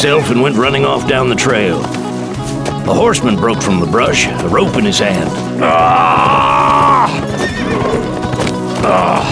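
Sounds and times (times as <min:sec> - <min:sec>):
speech: 0:00.0 - 0:07.2, 0:08.8 - 0:09.3
hooves clattering on a hard trail: 0:00.0 - 0:09.3
horse whinnying: 0:05.2 - 0:09.3.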